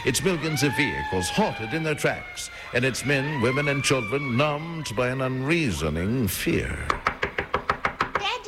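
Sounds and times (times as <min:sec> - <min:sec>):
speech: 0:00.0 - 0:07.0
knocking on a door: 0:06.9 - 0:08.3.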